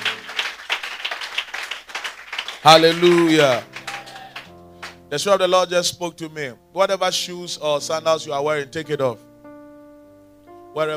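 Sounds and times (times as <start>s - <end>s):
audience clapping hands in a steady rhythmic beat: 0.0s - 5.0s
speech: 2.6s - 3.7s, 5.1s - 9.3s, 10.8s - 10.9s.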